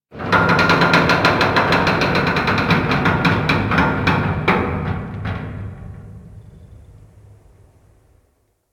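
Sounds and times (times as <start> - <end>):
metal creaking slowly in an interior: 0.2 - 8.2.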